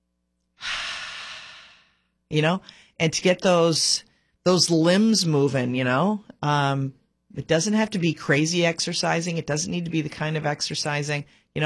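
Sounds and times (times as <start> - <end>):
deep breath: 0.6 - 3.0
speech: 2.3 - 11.6.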